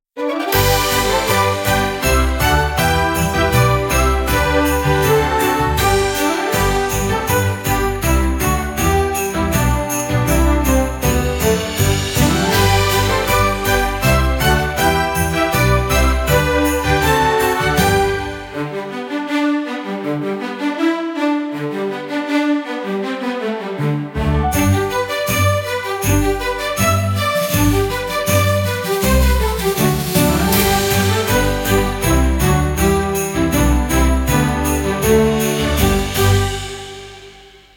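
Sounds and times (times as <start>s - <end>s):
happy orchestral Christmas music at 80 bpm: 0.2s - 37.7s.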